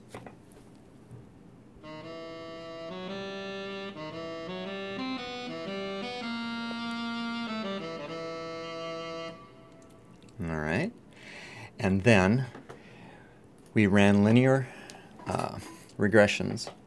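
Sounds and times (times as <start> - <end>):
short instrumental music excerpt: 1.8 - 10.3
speech: 11.8 - 12.6, 13.8 - 16.8.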